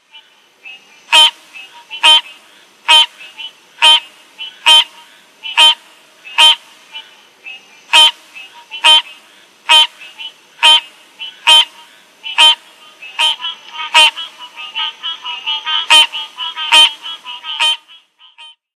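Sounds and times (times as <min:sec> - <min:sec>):
green treefrog: 0:00.0 - 0:18.6.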